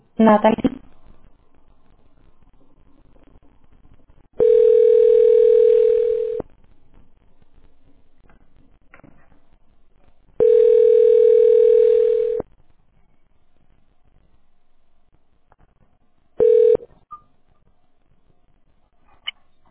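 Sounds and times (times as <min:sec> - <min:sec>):
speech: 0:00.2 - 0:00.8
phone call connecting tone: 0:04.4 - 0:06.4, 0:10.4 - 0:12.4, 0:16.4 - 0:16.9.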